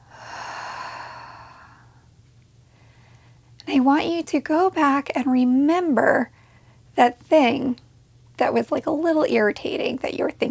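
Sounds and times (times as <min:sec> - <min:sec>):
deep breath in through the nose, out through the mouth: 0:00.0 - 0:02.1, 0:02.7 - 0:03.4
speech: 0:03.7 - 0:06.4, 0:07.0 - 0:07.8, 0:08.4 - 0:10.4.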